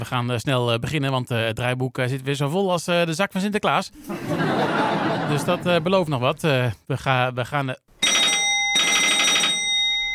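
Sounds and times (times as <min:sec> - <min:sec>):
speech: 0:00.0 - 0:07.8
laughter: 0:04.0 - 0:06.0
telephone bell ringing: 0:08.0 - 0:10.1.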